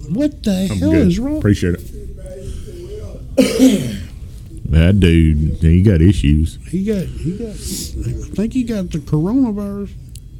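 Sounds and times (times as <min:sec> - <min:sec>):
speech: 0:00.1 - 0:02.0, 0:03.4 - 0:04.0, 0:04.7 - 0:10.0
harsh raspy phlegmy cough: 0:03.4 - 0:04.2.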